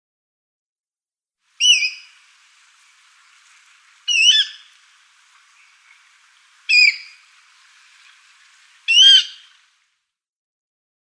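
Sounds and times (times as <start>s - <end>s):
water rail squealing calls: 1.6s - 9.7s.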